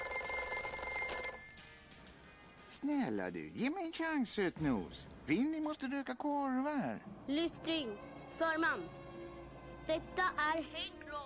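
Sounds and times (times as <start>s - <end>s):
telephone bell ringing with metallic trill: 0.0s - 2.1s
speech: 2.8s - 9.0s, 9.9s - 11.0s.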